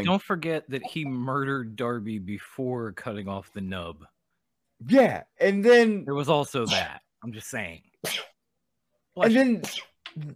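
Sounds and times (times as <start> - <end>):
speech: 0.0 - 4.1, 4.8 - 8.3, 9.2 - 10.3
person sneezing: 6.7 - 6.9, 8.0 - 8.4, 9.2 - 10.0.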